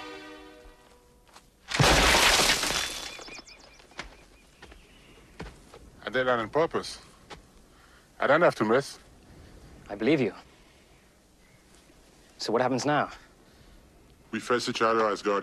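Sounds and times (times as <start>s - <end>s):
rock smashing against a boulder: 1.6s - 4.2s
speech: 6.2s - 7.1s, 8.2s - 9.0s, 9.9s - 10.5s, 12.4s - 13.2s, 14.3s - 15.4s.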